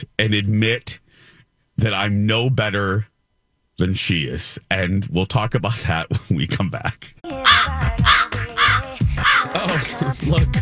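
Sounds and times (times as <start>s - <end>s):
speech: 0.0s - 1.0s, 1.8s - 3.1s, 3.8s - 8.2s, 9.7s - 10.6s
crows cawing: 7.4s - 9.9s
laughter: 7.5s - 10.4s.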